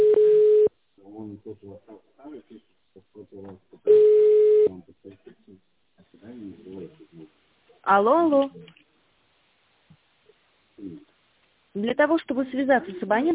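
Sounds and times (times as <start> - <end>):
telephone line connecting beeps: 0.0 - 0.7, 3.9 - 4.7
recorded voice speaking: 1.0 - 3.9, 4.7 - 8.8, 10.8 - 11.1, 11.8 - 13.3
speech: 7.9 - 8.6, 11.9 - 13.3.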